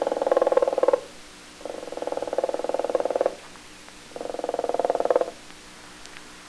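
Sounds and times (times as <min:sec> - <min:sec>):
flamingo calls: 0:00.0 - 0:03.4, 0:04.2 - 0:05.4.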